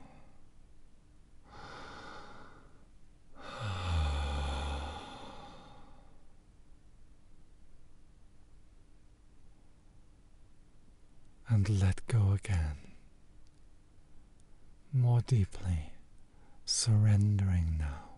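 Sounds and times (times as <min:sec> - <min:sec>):
slow deep breathing during a guided relaxation exercise: 0:01.4 - 0:06.4, 0:16.3 - 0:16.6
speech: 0:11.5 - 0:12.9, 0:14.9 - 0:15.9, 0:16.7 - 0:18.1.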